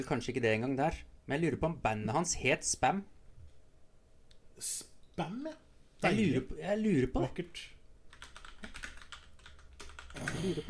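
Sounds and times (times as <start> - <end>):
speech: 0.0 - 3.2, 4.6 - 7.8, 10.2 - 10.6
typing on a computer keyboard: 8.1 - 10.4.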